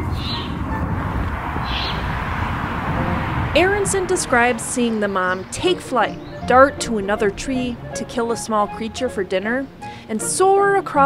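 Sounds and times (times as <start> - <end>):
outdoor rumble: 0.0 - 11.0
baby owls calling from nest: 1.6 - 2.1
speech: 3.6 - 11.0.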